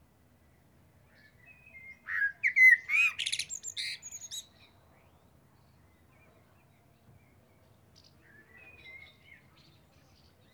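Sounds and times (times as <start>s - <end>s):
Eurasian blackbird song, Turdus merula: 0.5s - 10.5s.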